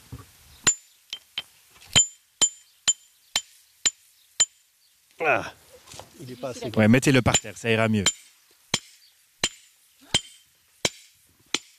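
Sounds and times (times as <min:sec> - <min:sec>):
geologist's hammer striking a hard river pebble: 0:01.9 - 0:04.6, 0:07.3 - 0:11.7
speech: 0:05.2 - 0:05.6, 0:06.2 - 0:08.2.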